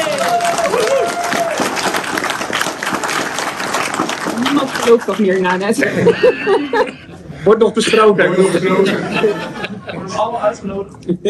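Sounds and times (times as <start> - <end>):
people cheering: 0.0 - 5.1
audience applause: 0.0 - 5.8
speech: 4.8 - 9.6, 10.2 - 11.2
laughter: 5.8 - 10.7.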